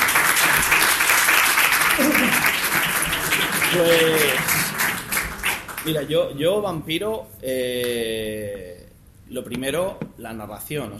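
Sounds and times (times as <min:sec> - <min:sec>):
audience applause at a festival panel talk on role-playing games: 0:00.0 - 0:06.0
speech: 0:03.7 - 0:04.6, 0:05.8 - 0:10.9.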